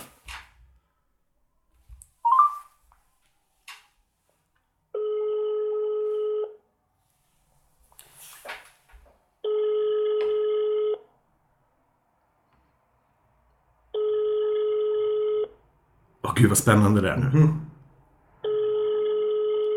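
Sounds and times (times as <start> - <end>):
mobile phone call ringing tones over speakerphone: 4.9 - 6.6, 9.4 - 11.1, 13.9 - 15.6, 18.4 - 19.7
speech: 16.4 - 17.6.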